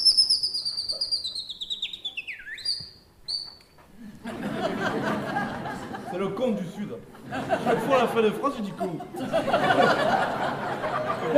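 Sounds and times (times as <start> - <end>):
chaffinch singing a descending trill with extra final phrase: 0.0 - 3.7
laughter: 4.0 - 11.3
speech: 6.2 - 11.3.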